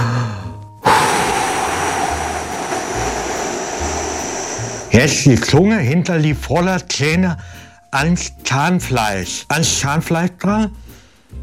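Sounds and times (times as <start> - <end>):
forceful exhale from a man lying on the floor: 0.8 - 5.0
speech: 5.0 - 10.8.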